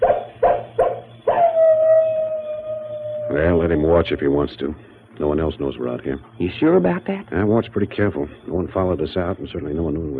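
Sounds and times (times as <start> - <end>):
old male wolf barking on a ridge: 0.0 - 2.2
old male wolf howling on a ridge: 1.2 - 4.7
speech: 3.3 - 10.1.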